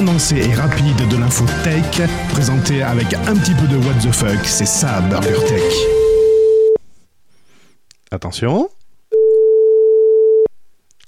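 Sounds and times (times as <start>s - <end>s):
speech: 0.1s - 6.1s, 8.1s - 8.8s
telephone ringing tone: 5.4s - 6.8s, 9.2s - 10.5s.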